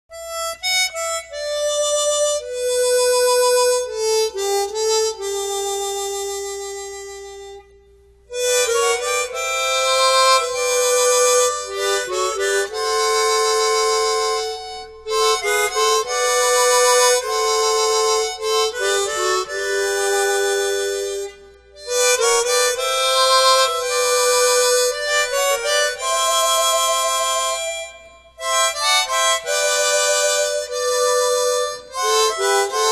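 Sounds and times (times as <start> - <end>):
chromatic harmonica playing hymns: 0.1 - 32.9.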